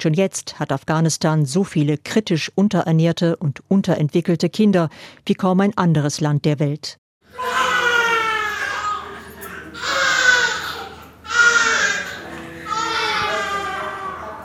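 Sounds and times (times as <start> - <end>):
speech: 0.0 - 7.8
infant crying with high-pitched wails: 7.3 - 14.4.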